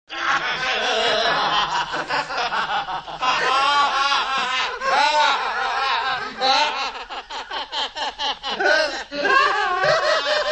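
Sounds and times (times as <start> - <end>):
two men laughing: 0.1 - 10.4.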